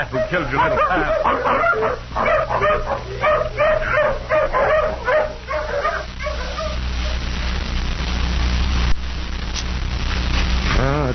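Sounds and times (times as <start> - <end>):
speech: 0.0 - 5.1
hound baying and whining while tracking a scent: 0.0 - 7.3
low steady rumble: 0.0 - 11.1.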